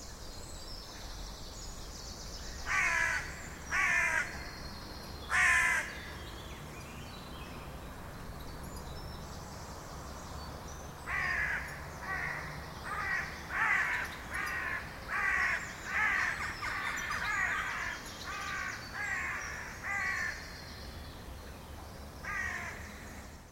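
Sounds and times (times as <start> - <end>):
Corvus corone carrion crow cawing: 2.6 - 4.5, 5.3 - 6.0, 11.1 - 20.4, 22.2 - 22.8.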